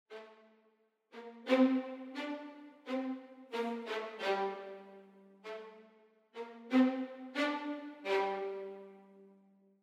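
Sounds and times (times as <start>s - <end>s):
violins playing slow spiccato: 1.2s - 5.8s, 6.4s - 9.2s.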